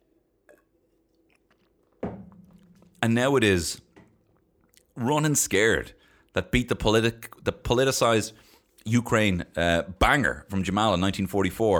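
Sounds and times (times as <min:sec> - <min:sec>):
person sipping water: 0:00.4 - 0:03.0, 0:03.8 - 0:05.0
speech: 0:03.0 - 0:03.8, 0:05.0 - 0:11.7.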